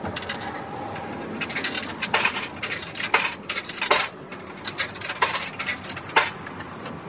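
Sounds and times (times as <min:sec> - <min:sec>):
coins fed into a payphone slot: 0:00.2 - 0:06.8.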